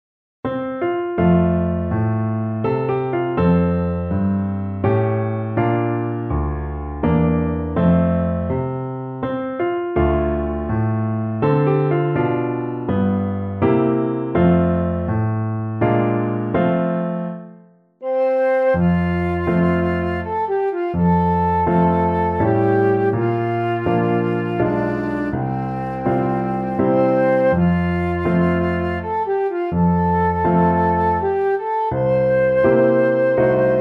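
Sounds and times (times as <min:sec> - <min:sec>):
piano: 0:00.4 - 0:33.8
soprano recorder: 0:18.0 - 0:33.8.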